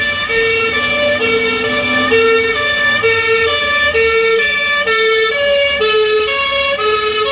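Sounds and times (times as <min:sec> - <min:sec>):
ambulance siren wailing in a two-tone alternation: 0:00.0 - 0:07.3
low engine rumble: 0:00.0 - 0:07.3.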